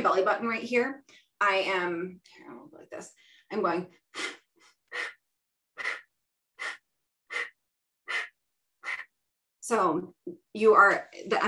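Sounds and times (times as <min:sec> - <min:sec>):
speech: 0:00.2 - 0:05.1, 0:09.7 - 0:11.4
forceful exhales through the nose and mouth: 0:05.8 - 0:09.1.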